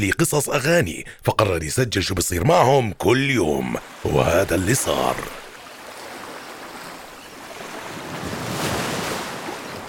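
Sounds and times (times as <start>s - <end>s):
speech: 0.0s - 5.4s
ocean surf on open water: 3.6s - 9.8s.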